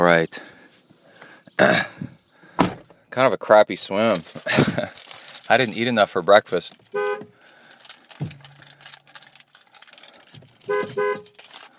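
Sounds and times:
speech: 0.1s - 0.5s, 1.6s - 2.0s, 3.2s - 7.0s
vehicle noise: 4.1s - 11.7s
car horn honking: 6.9s - 7.3s, 10.6s - 11.4s.

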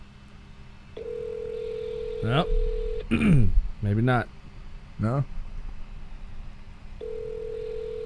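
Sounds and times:
faint hum: 0.0s - 8.0s
low electronic phone ringback tone: 1.0s - 3.1s, 7.0s - 8.0s
speech: 2.2s - 4.4s, 5.0s - 5.4s.

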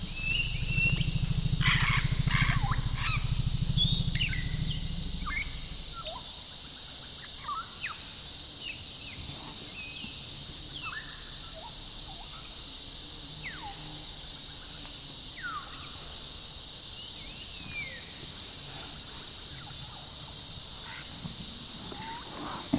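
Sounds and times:
forest elephant deep heavy rumble in a young rainforest in Central Gabon: 0.0s - 6.2s, 18.7s - 22.7s
dense steady wall of pulsing insects: 0.0s - 22.7s.

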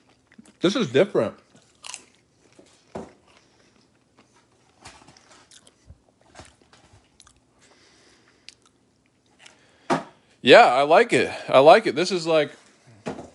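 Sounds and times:
crunching and chewing of microwave popcorn: 0.0s - 7.5s
speech: 0.6s - 1.4s, 10.4s - 12.6s.

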